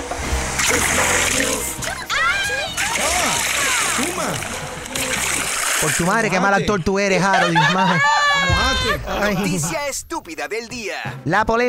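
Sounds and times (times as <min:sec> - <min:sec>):
speech: 0:00.7 - 0:11.6
people shouting and reacting: 0:01.9 - 0:04.4, 0:07.5 - 0:09.2
water mixed with chili thrown and splashing onto a person: 0:02.8 - 0:06.1
laughter: 0:06.2 - 0:10.0.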